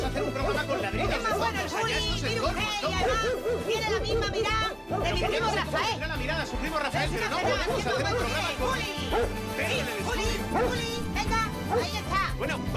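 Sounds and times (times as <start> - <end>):
dog barking in a radio studio: 0.0 - 1.2, 2.8 - 6.0, 7.3 - 9.4, 10.4 - 11.0, 11.6 - 12.1
several people talking over one another: 0.0 - 12.7.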